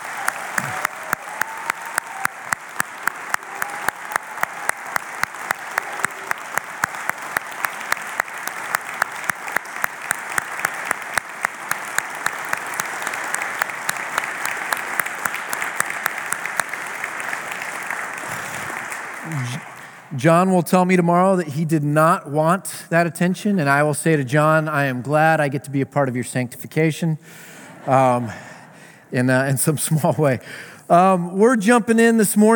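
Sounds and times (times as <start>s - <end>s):
sustained audience applause in honor of a man: 0.0s - 20.1s
speech: 20.2s - 28.5s, 29.1s - 32.5s.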